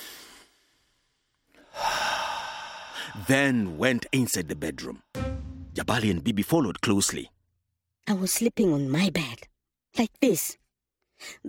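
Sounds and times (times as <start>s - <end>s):
deep breath: 1.5s - 3.8s
speech: 3.2s - 5.1s, 5.8s - 7.4s, 8.0s - 10.6s, 11.2s - 11.4s.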